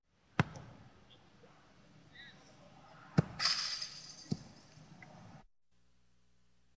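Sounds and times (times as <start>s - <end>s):
ball hitting the net: 0.4s - 0.7s, 3.1s - 4.6s
ball being kicked: 3.2s - 3.6s
ball falling: 3.2s - 4.7s.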